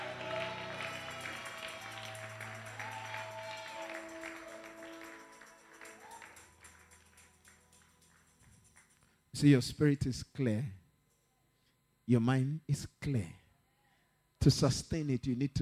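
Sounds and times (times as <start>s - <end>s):
large crowd clapping and cheering loudly: 0.0s - 9.1s
speech: 9.4s - 10.8s, 12.1s - 13.4s, 14.4s - 15.6s.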